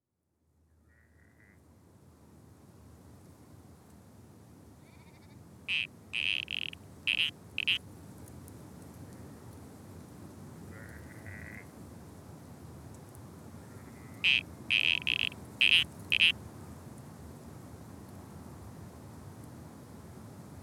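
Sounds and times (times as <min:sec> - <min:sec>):
spotted grass frog calling in Australia: 0:05.7 - 0:07.8, 0:14.0 - 0:16.4.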